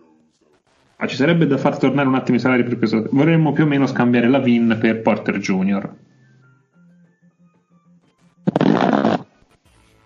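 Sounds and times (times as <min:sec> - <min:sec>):
speech: 0:01.0 - 0:06.1
raspberry blown with the lips: 0:08.5 - 0:09.4.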